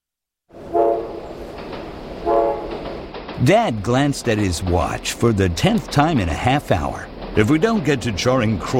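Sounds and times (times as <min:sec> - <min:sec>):
train rumbling past: 0:00.5 - 0:08.7
train horn short loud blasts: 0:00.6 - 0:01.4, 0:02.2 - 0:02.8
speech: 0:03.4 - 0:08.7.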